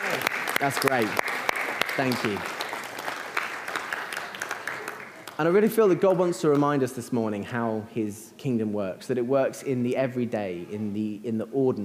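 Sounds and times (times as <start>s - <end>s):
audience applause: 0.0s - 5.4s
speech: 0.6s - 1.4s, 2.0s - 2.6s, 5.4s - 11.8s.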